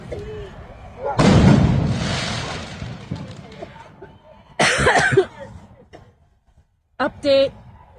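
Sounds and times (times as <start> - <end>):
noisy outdoor crowd at a protest: 0.0 - 7.9
loud fireworks bangs at a protest: 1.2 - 4.1
speech: 7.0 - 7.6.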